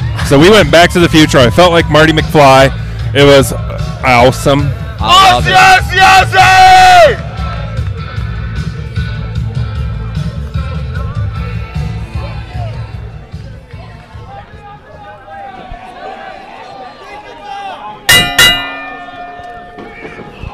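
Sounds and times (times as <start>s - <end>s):
speech: 0.3s - 7.2s
crowd murmuring: 7.2s - 20.5s
bell struck with ringing clang: 18.1s - 20.5s.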